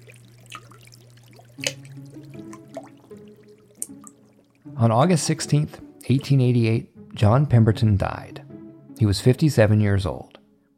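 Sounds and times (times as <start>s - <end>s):
sticky hot syrup dripping through floorboards: 0.0s - 4.7s
wet plops and sharper splats of syrup: 0.0s - 4.7s
low steady hum: 0.0s - 5.2s
speech: 1.6s - 2.0s, 4.8s - 8.4s, 9.0s - 10.3s.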